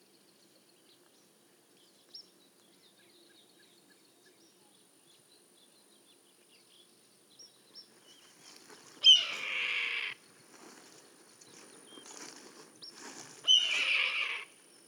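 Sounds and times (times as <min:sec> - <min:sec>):
red-tailed hawk giving hoarse raspy screams: 0:09.0 - 0:10.2, 0:13.4 - 0:14.6.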